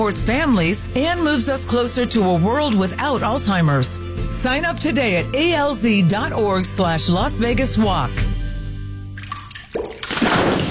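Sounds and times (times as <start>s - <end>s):
speech: 0.0s - 8.3s
water dripping from leaking plumbing: 9.2s - 10.7s
rushing water flowing from leaking plumbing: 9.8s - 10.7s.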